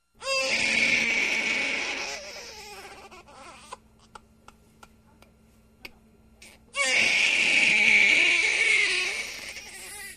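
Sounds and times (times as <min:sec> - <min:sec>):
baby wailing in a remote mountain forest: 0:00.2 - 0:03.8, 0:06.7 - 0:10.1.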